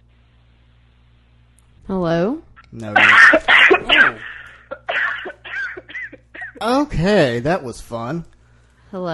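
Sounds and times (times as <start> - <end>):
low electrical hum: 0.0 - 9.1
speech: 1.9 - 3.5, 6.6 - 8.3, 8.9 - 9.1
person coughing over a telephone line: 3.0 - 6.6.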